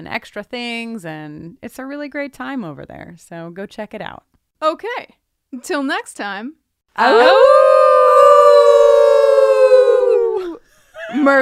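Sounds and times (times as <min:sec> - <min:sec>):
speech: 0:00.0 - 0:07.8, 0:11.1 - 0:11.4
wolf howling: 0:07.0 - 0:10.6.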